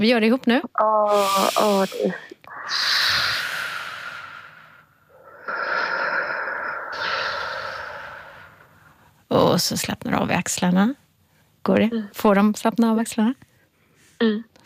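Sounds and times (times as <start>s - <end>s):
speech: 0.0s - 3.1s, 9.3s - 11.0s, 11.6s - 13.5s, 14.2s - 14.6s
slow controlled exhalation through the mouth: 1.1s - 9.1s.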